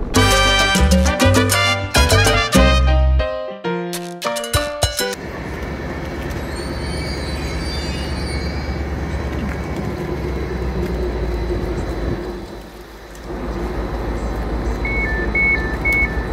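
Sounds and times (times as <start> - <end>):
rhythmic bursts of harmonic horn-like tones: 0.0 - 3.2
train rumbling along the rails in Yarmouth: 5.2 - 16.3.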